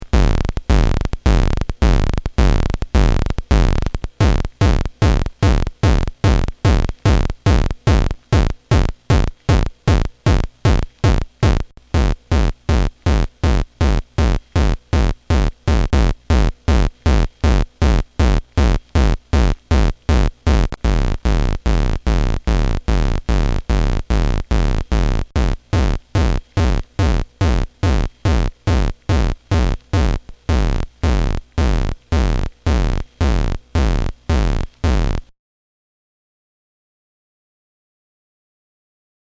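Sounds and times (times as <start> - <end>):
bit kick drums: 0.0 - 35.3.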